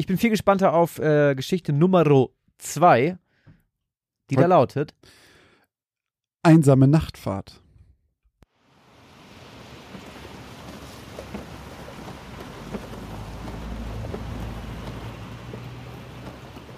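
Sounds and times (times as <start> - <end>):
speech: 0.0 - 3.2, 4.3 - 5.2, 6.4 - 7.6
heavy rain pouring: 8.5 - 16.7.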